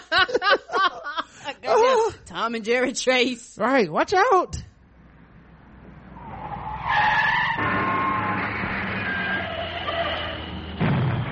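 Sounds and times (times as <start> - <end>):
laughter: 0.0 - 2.0
speech: 2.4 - 4.6
car engine rumble: 4.7 - 11.2
car tires screeching while skidding: 5.8 - 11.2.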